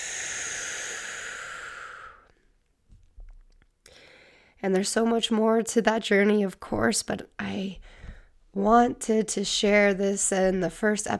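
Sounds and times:
deep breath in and out during a guided relaxation exercise: 0:00.0 - 0:02.3, 0:03.9 - 0:04.6, 0:07.8 - 0:08.4
speech: 0:04.6 - 0:11.1.

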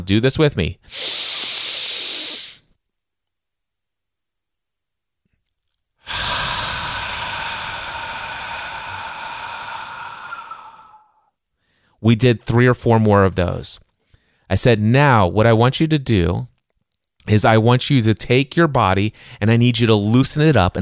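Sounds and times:
speech: 0:00.0 - 0:01.0, 0:12.0 - 0:13.8, 0:14.5 - 0:16.5, 0:17.2 - 0:20.7
long steady breathy exhale: 0:00.9 - 0:02.6, 0:06.0 - 0:12.0
loud inhale: 0:00.9 - 0:02.7, 0:06.0 - 0:12.0.

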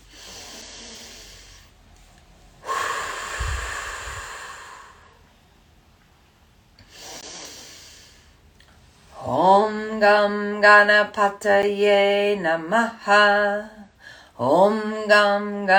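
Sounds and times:
person taking a deep breath in and out: 0:00.0 - 0:01.8, 0:02.6 - 0:05.2, 0:06.8 - 0:08.4
speech: 0:10.0 - 0:13.8, 0:14.4 - 0:15.7.

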